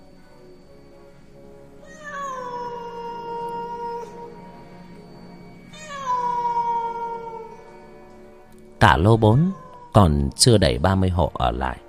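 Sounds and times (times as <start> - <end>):
black cat meowing on a balcony: 1.8 - 4.4, 5.7 - 7.8, 9.3 - 10.2
speech: 8.8 - 11.8.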